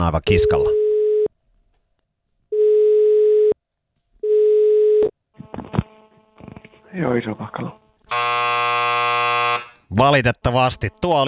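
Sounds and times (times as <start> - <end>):
speech: 0.0 - 0.8, 7.0 - 9.0, 9.9 - 11.2
ringing tone of an outgoing phone call: 0.4 - 1.3, 2.5 - 3.6, 4.2 - 5.1, 8.1 - 9.9.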